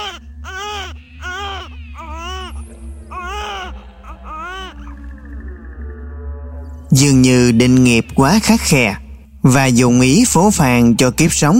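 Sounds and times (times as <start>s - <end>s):
newborn baby crying: 0.0s - 5.1s
low hum: 0.0s - 11.2s
speech: 6.9s - 11.5s.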